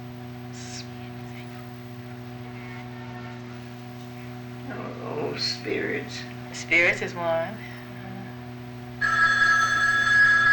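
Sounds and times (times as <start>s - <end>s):
faint low hum: 0.0s - 10.5s
speech: 5.4s - 7.7s
telephone bell ringing: 9.0s - 10.5s.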